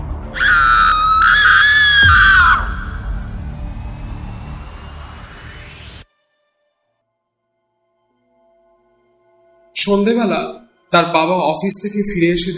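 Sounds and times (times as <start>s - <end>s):
person screaming in a high-pitched cry: 0.4s - 3.1s
speech: 9.8s - 12.5s.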